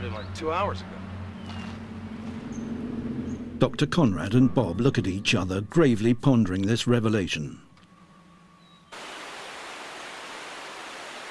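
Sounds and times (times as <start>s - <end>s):
speech: 0.2s - 1.6s, 3.6s - 7.6s
fast-flowing river rushing: 8.9s - 11.3s.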